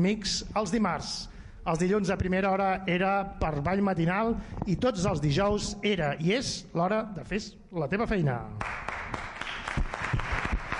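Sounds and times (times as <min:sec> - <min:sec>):
speech: 0:00.0 - 0:08.8
crowd applause: 0:08.6 - 0:10.7.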